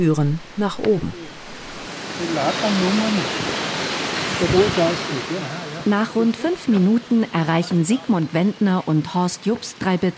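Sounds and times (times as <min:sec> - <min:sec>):
speech: 0:00.0 - 0:01.4, 0:02.2 - 0:03.5, 0:04.4 - 0:10.1
mountain stream rushing beneath wooden footbridges in a gorge: 0:00.0 - 0:09.8.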